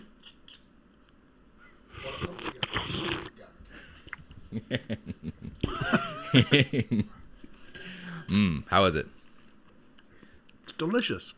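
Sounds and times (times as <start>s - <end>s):
raw oyster being slurped from its shell: 1.9s - 3.4s
person laughing and chuckling: 4.2s - 7.2s
speech: 4.5s - 5.4s, 6.3s - 7.2s, 8.3s - 9.2s, 10.8s - 11.3s.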